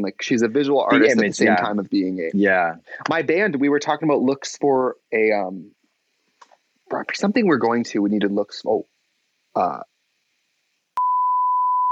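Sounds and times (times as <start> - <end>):
speech: 0.0 - 5.8, 6.9 - 8.9, 9.6 - 9.9
loud steady single-pitch censor beep: 11.0 - 11.9.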